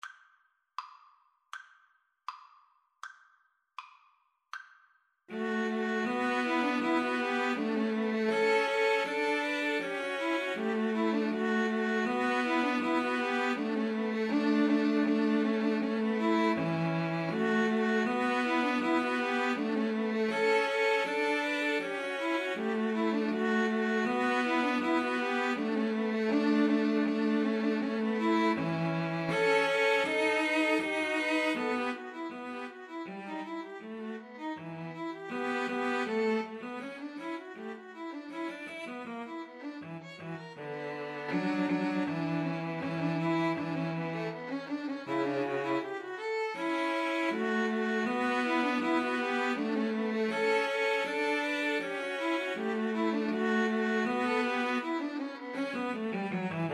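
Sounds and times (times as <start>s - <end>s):
string trio playing a gavotte: 5.3s - 56.7s.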